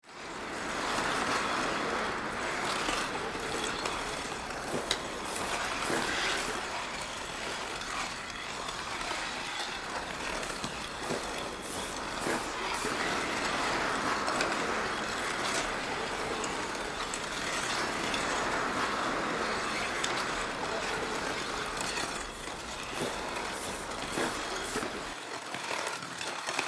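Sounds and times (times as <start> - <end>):
ice skating in an ice hockey arena: 0.0 - 25.8.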